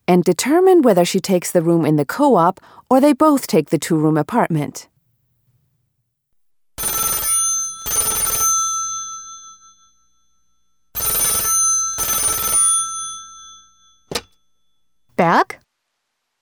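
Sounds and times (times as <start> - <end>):
speech: 0.1 - 4.9
old-style telephone bell ringing for an incoming call: 6.8 - 14.9.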